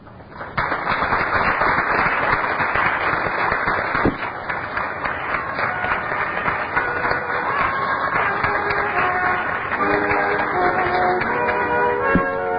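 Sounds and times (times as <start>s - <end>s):
large audience applauding as a guest enters: 0.3s - 12.4s
scattered cheers: 5.2s - 9.4s.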